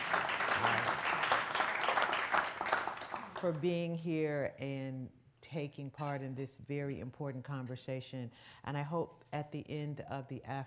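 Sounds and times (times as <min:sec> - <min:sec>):
audience applauding at the City Club of Cleveland: 0:00.0 - 0:03.4
speech: 0:03.4 - 0:10.6.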